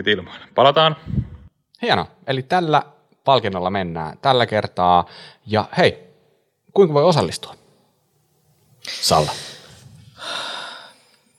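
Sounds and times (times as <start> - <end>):
speech: 0.0 - 1.2, 1.8 - 6.1, 6.8 - 7.6, 8.8 - 9.6
deep breath: 0.3 - 1.5, 8.8 - 11.3.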